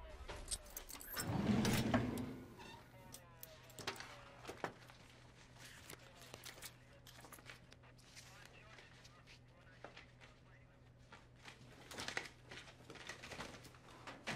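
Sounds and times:
faint room hum: 0:00.0 - 0:14.3
metal drawer keys jingling and clinking: 0:00.4 - 0:02.4.

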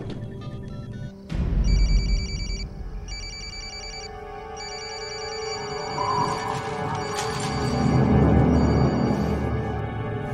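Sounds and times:
telephone ringing with a bright electronic trill: 0:01.6 - 0:09.6.

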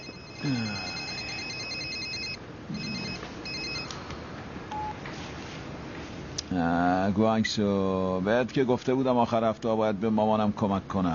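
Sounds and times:
telephone ringing with an electronic ringtone: 0:00.0 - 0:03.9
speech: 0:06.6 - 0:11.1.

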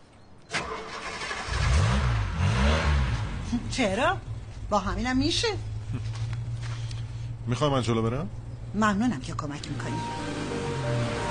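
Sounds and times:
car engine starting and revving: 0:00.5 - 0:04.4, 0:08.8 - 0:11.3
speech: 0:03.5 - 0:06.2, 0:07.5 - 0:11.1.

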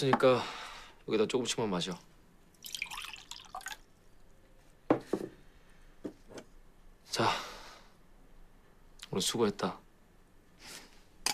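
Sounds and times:
speech: 0:00.0 - 0:02.1, 0:07.1 - 0:07.4, 0:09.2 - 0:09.8
liquid pouring into a cup: 0:02.5 - 0:03.9
soft drips of liquid: 0:02.5 - 0:04.0.

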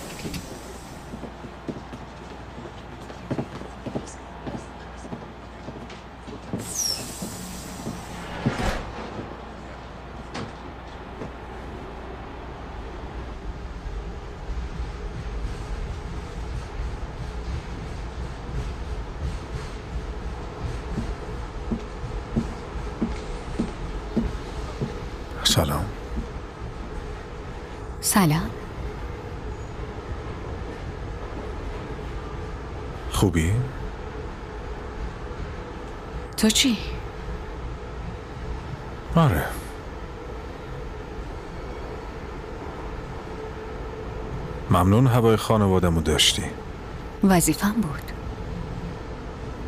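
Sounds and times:
metro train doors sliding: 0:00.0 - 0:01.5, 0:06.4 - 0:11.5
metro train rumbling with faint rattles: 0:00.0 - 0:49.6
speech: 0:28.2 - 0:28.5, 0:33.3 - 0:33.7, 0:36.4 - 0:36.9, 0:39.2 - 0:39.5, 0:44.8 - 0:48.1.

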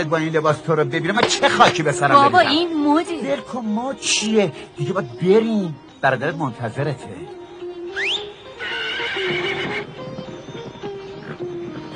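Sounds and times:
speech: 0:00.0 - 0:08.0
carriage horse neighing at a wedding: 0:08.0 - 0:10.0
carriage horse snorting at a wedding: 0:08.6 - 0:09.9.

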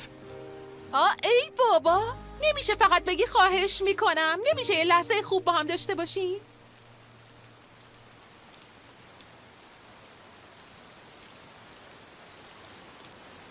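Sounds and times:
steady rain hitting surfaces: 0:00.0 - 0:13.4
speech: 0:00.9 - 0:06.5.

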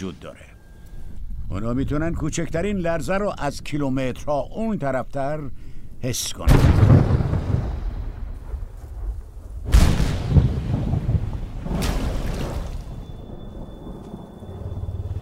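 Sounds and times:
speech: 0:00.0 - 0:00.6, 0:01.5 - 0:07.2
deep rolls of thunder: 0:06.5 - 0:15.2
distant rain: 0:06.5 - 0:15.2.

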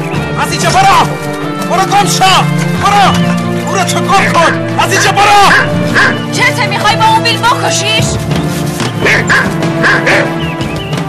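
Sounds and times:
speech: 0:00.5 - 0:08.4, 0:09.1 - 0:10.5
dog barking: 0:04.9 - 0:06.3, 0:09.0 - 0:10.4.

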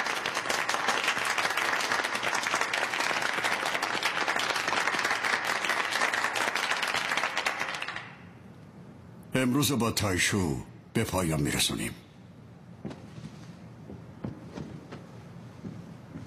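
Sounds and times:
audience applause: 0:00.0 - 0:08.2
speech: 0:09.4 - 0:12.0.

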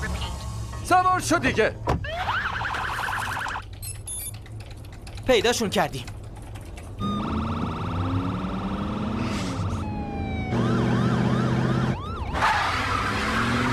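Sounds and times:
speech: 0:00.9 - 0:02.0, 0:05.3 - 0:06.1
police patrol car siren during a chase: 0:02.0 - 0:03.7, 0:07.0 - 0:13.7.

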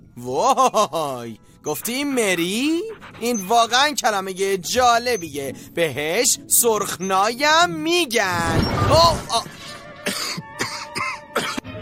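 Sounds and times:
speech: 0:00.2 - 0:09.8
harsh coughing: 0:09.3 - 0:11.7.

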